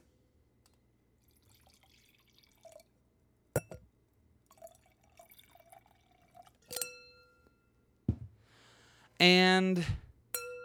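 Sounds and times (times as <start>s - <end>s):
wine pouring into a glass: 1.2s - 2.9s, 4.5s - 6.8s
glass clinks: 3.6s - 3.8s, 6.7s - 7.5s, 10.4s - 10.6s
speech: 9.2s - 10.0s.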